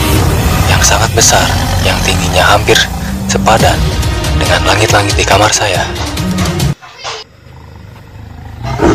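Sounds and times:
huge white tiger roaring: 0.5s - 4.2s, 7.3s - 8.9s
speech: 1.2s - 6.6s.

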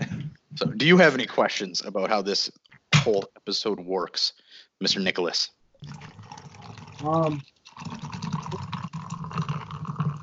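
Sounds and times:
speech: 0.6s - 6.1s, 7.0s - 8.0s
drink pouring into a glass: 5.8s - 10.2s.

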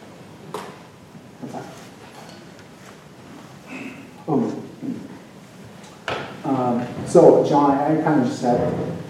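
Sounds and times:
people shifting in creaky seats: 1.4s - 7.4s, 8.2s - 9.0s
speech: 7.1s - 9.0s
chair creaks: 8.4s - 9.0s.

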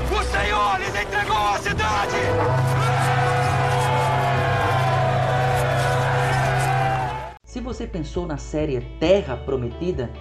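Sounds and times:
long trumpet blast: 0.2s - 7.4s
large army of men roaring a battle cry in a TV series scene: 1.4s - 7.4s
speech: 7.7s - 10.1s.

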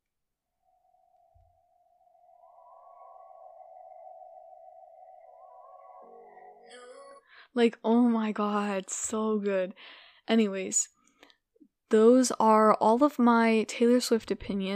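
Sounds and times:
sustained synth tone in pop song intro: 0.6s - 8.4s
speech: 7.5s - 11.0s, 11.9s - 14.7s.

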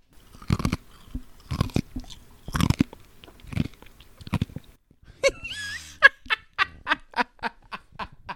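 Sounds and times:
ice being chomped and crunched between the teeth: 0.1s - 4.8s
laughter: 5.2s - 8.3s.

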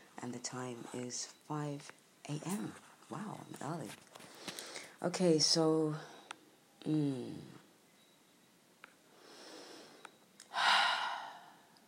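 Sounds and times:
speech: 0.2s - 4.3s, 5.0s - 6.2s, 6.8s - 7.6s
deep breathing before speaking: 9.1s - 11.8s.

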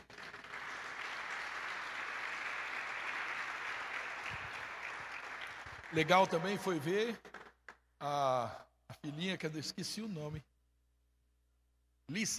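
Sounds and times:
crowd applauding: 0.0s - 7.8s
speech: 5.9s - 7.3s, 8.0s - 10.5s, 12.1s - 12.3s.

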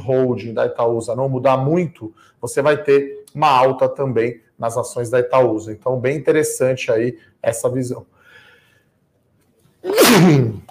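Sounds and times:
speech: 0.0s - 8.2s, 9.8s - 10.6s
loud sneeze: 9.8s - 10.6s.

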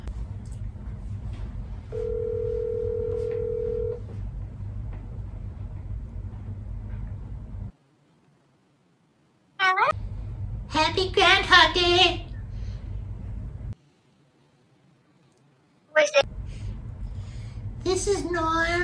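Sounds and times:
constant low hum: 0.0s - 7.7s, 10.0s - 13.8s, 16.2s - 18.8s
telephone dial tone: 2.0s - 4.0s
speech: 11.0s - 12.2s, 18.0s - 18.8s.

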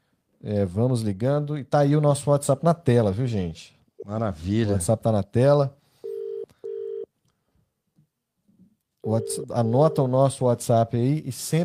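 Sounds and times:
speech: 0.4s - 5.8s, 9.0s - 11.6s
electronic ringback tones of an outgoing phone call: 6.0s - 7.1s, 9.0s - 10.1s.

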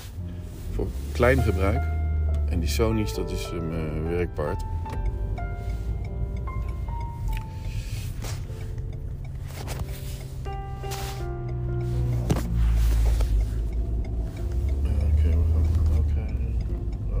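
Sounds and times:
heavy truck engines rumbling on a narrow road: 0.0s - 17.1s
speech: 0.8s - 4.8s
truck air brakes hissing: 7.4s - 8.7s, 9.9s - 13.6s.

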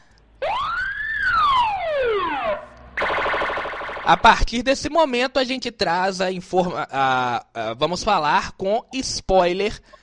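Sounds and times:
loud wailing siren: 0.4s - 4.5s
harsh buzzing alarm tone: 0.5s - 4.4s
speech: 4.1s - 10.0s.

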